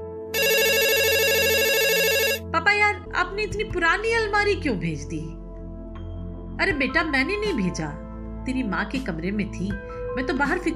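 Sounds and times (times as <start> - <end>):
telephone ringing with electronic ringtone: 0.4 - 2.4
speech: 3.2 - 5.4, 6.6 - 10.7.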